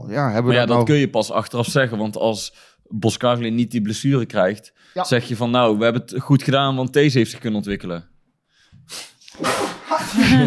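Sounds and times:
speech: 0.1s - 8.1s, 8.9s - 10.4s
short sharp intake of breath: 8.5s - 9.9s
loud sneeze: 9.0s - 10.4s
laughter: 9.7s - 10.4s.

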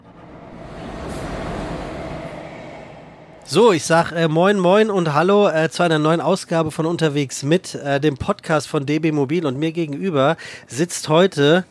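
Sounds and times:
departing train rumbling: 0.0s - 5.2s
speech: 3.5s - 11.6s.

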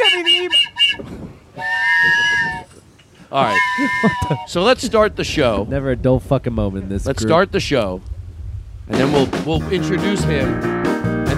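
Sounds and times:
train whistle: 0.0s - 1.0s, 1.6s - 2.7s, 3.4s - 4.5s
laughter: 1.9s - 2.6s, 3.2s - 5.2s
speech: 3.3s - 8.1s, 8.9s - 10.8s
low rumble: 4.5s - 11.3s.

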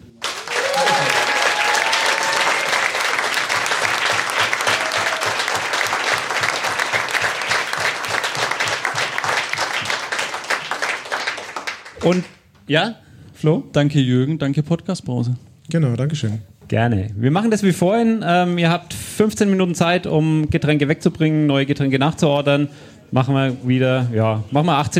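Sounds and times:
sustained audience applause: 0.0s - 12.3s
brief tonal whistles or cheers: 0.4s - 3.1s, 4.6s - 5.6s
speech: 12.1s - 24.9s.

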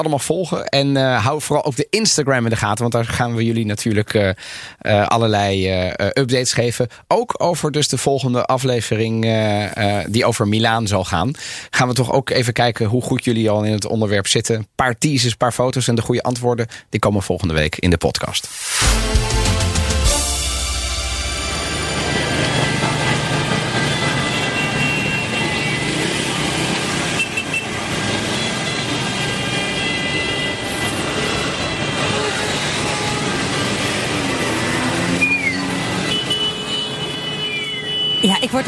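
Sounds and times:
speech: 0.0s - 19.4s, 38.2s - 38.6s
many overlapping car horns honking and blaring: 19.2s - 38.6s
busy street traffic in southern Italy: 20.0s - 38.6s.

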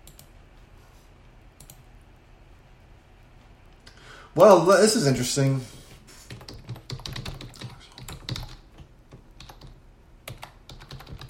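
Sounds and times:
speech: 4.4s - 5.8s
typing on a computer keyboard: 6.3s - 11.2s.

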